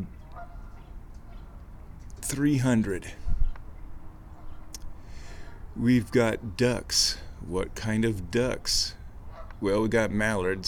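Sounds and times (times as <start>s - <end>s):
flock of Canada geese honking: 0.2s - 1.6s
speech: 2.3s - 3.2s, 5.8s - 9.0s, 9.6s - 10.6s.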